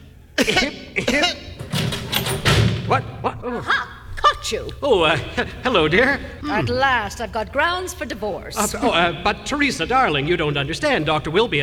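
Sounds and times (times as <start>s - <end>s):
person coughing during a medical examination: 0.4s - 1.4s, 6.4s - 6.8s
speech: 0.4s - 1.5s, 2.9s - 3.9s, 4.5s - 11.6s
laughter: 0.4s - 1.9s, 3.0s - 7.5s, 8.5s - 11.6s.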